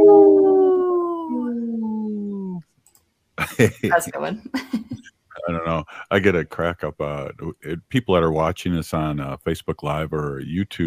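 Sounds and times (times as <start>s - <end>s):
wolf howling: 0.0s - 2.6s
laughter: 3.4s - 8.5s
speech: 3.5s - 10.8s.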